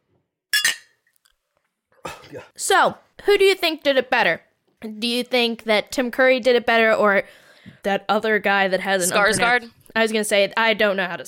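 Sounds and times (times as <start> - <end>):
two glasses clinking in a toast: 0.6 - 1.0
speech: 2.3 - 11.2.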